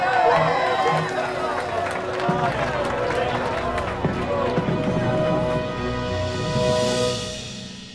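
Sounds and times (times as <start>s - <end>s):
large crowd cheering in a New York harbor welcoming an arriving ship: 0.0s - 6.2s.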